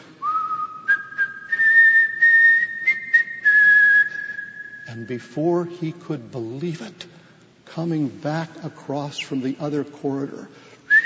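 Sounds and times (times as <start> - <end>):
prisoner in a cell whistling a slow tune: 0.2 - 5.1, 10.9 - 11.0
speech: 5.0 - 10.6.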